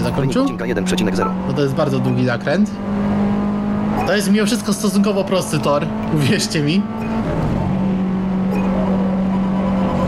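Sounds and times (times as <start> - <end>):
speech: 0.1 - 3.2, 4.0 - 7.4
rally car engine droning as driver eases off throttle: 1.3 - 10.0
rushing road and wind noise: 1.3 - 10.0.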